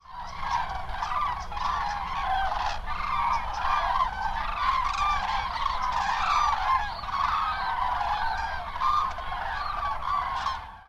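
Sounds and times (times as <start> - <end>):
cranes calling: 0.0 - 10.8.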